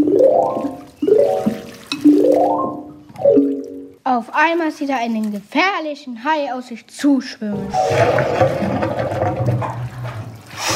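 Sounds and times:
gurgling water bursts for swimming fish: 0:00.0 - 0:03.9, 0:07.7 - 0:10.7
speech: 0:04.1 - 0:09.4.

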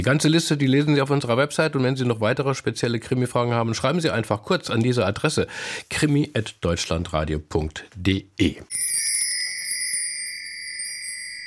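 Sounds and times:
speech: 0:00.0 - 0:09.1
small bell ringing: 0:08.7 - 0:11.4.

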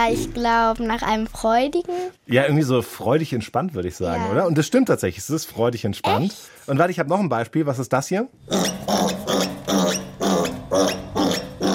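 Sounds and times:
speech: 0:00.0 - 0:10.0
stressed piglet squealing: 0:08.5 - 0:11.7.

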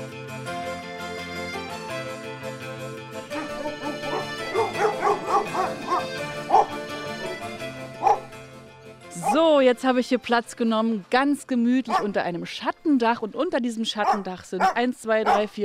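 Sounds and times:
several dogs barking and yipping: 0:03.3 - 0:08.4, 0:09.2 - 0:09.4, 0:11.9 - 0:12.2, 0:14.0 - 0:15.6
speech: 0:09.6 - 0:15.6.

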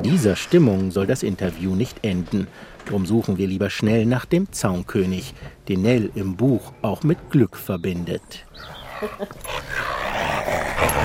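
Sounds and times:
speech: 0:00.0 - 0:09.9, 0:10.5 - 0:11.0
female dog growling while biting a stick in a garden: 0:08.5 - 0:11.0.

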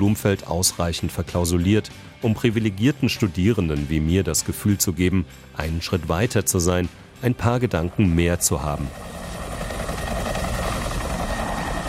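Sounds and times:
speech: 0:00.0 - 0:09.2
helicopter rotor thrumming: 0:06.6 - 0:11.8
helicopter engine noise: 0:07.5 - 0:11.8.

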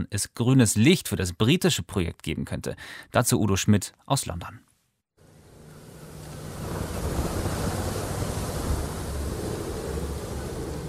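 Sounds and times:
speech: 0:00.0 - 0:04.7
stormy sea surf between Northern Ireland and Scotland: 0:05.5 - 0:10.8
heavy wind buffeting the microphone: 0:06.1 - 0:10.8.

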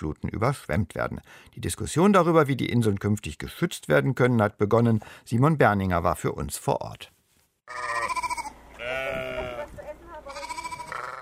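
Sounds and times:
speech: 0:00.0 - 0:08.0
several sheep bleating while grazing on a grassy settlement mound: 0:07.7 - 0:11.2.

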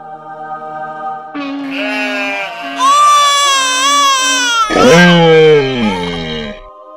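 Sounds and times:
sheep bleating: 0:01.4 - 0:06.7
donkey calls: 0:01.6 - 0:06.6
baby crying: 0:01.6 - 0:06.7.

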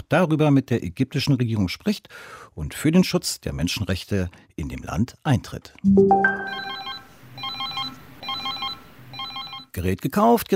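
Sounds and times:
speech: 0:00.1 - 0:06.8, 0:09.8 - 0:10.5
electronic telephone ringing on a call to a service hotline: 0:05.9 - 0:09.7.

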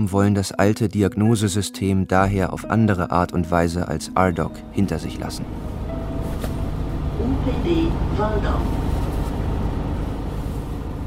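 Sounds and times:
speech: 0:00.0 - 0:05.8, 0:07.2 - 0:09.0
bus engine rumble from inside a moving bus: 0:04.8 - 0:11.0.

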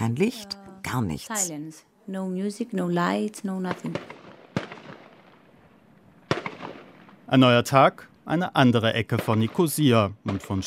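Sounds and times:
speech: 0:00.1 - 0:04.1, 0:07.3 - 0:10.6
gunfire from UN soldiers firing volleys into the air at an abandoned airport: 0:03.7 - 0:05.5, 0:06.2 - 0:07.2.

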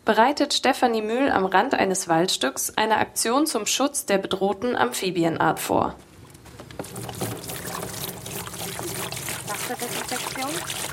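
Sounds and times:
speech: 0:00.1 - 0:06.1, 0:09.7 - 0:10.9
water sloshing and splashing in a tub: 0:06.6 - 0:10.9.

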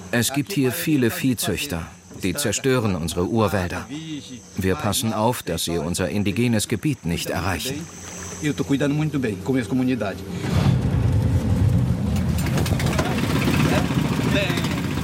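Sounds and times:
speech: 0:00.1 - 0:10.7
wooden riverboat motor running upriver: 0:07.2 - 0:15.0.

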